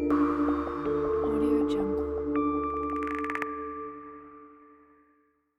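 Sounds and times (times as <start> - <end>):
scary horror logo sting: 0.1 - 4.2.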